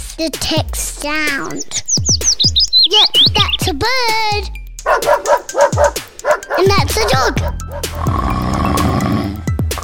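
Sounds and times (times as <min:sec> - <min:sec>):
speech: 0:00.2 - 0:02.2, 0:02.9 - 0:06.0, 0:06.5 - 0:08.4
woman snoring loudly with throaty snorts: 0:07.9 - 0:09.5.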